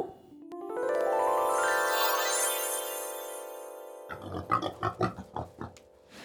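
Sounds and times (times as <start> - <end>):
long shimmering chime-like tone: 0.8 - 4.1
plump well-fed pig grunting: 4.1 - 5.8.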